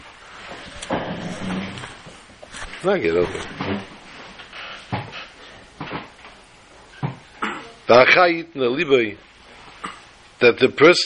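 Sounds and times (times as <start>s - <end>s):
quieter shuffling: 0.1s - 6.4s
chair scraping and dragging across the floor: 0.4s - 6.2s
speech: 2.8s - 3.9s, 7.9s - 9.3s, 10.4s - 11.0s.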